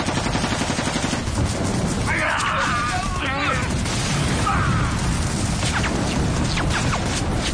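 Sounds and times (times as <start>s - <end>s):
rifle volley fire in a wartime ambush: 0.0s - 2.4s, 3.5s - 7.5s
people shouting: 2.1s - 3.7s, 4.4s - 5.1s.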